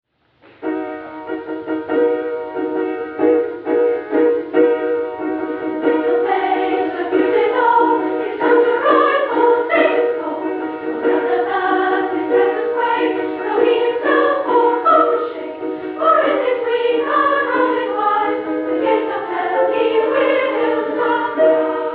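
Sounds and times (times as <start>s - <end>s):
piano: 0.1s - 21.9s
Christmas choir singing: 5.7s - 21.9s.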